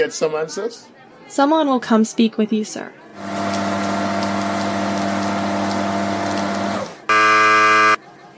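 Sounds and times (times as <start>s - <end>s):
speech: 0.0s - 3.6s
high-pressure shower wash spraying a person: 3.2s - 7.9s
droning pump hum: 3.2s - 8.0s
harsh buzzing electronic tone: 7.1s - 8.0s.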